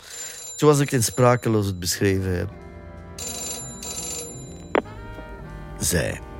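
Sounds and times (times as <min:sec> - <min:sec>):
telephone ringing in bright electronic bursts: 0:00.0 - 0:02.5, 0:03.2 - 0:05.3
speech: 0:00.6 - 0:02.8, 0:05.8 - 0:06.3
steady tonal music: 0:01.2 - 0:06.3.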